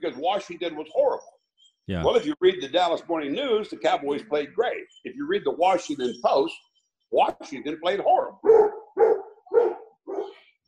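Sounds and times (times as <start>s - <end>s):
speech: 0.0s - 8.7s
dog barking: 8.4s - 10.4s.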